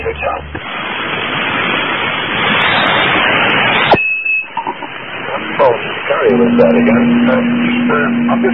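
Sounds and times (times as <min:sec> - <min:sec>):
faint voice-like fragments: 0:00.0 - 0:00.6, 0:04.6 - 0:08.5
loud steady radio static hiss: 0:00.0 - 0:08.5
speech: 0:00.2 - 0:00.8, 0:06.4 - 0:08.5
low steady radio carrier tone humming: 0:03.9 - 0:08.5.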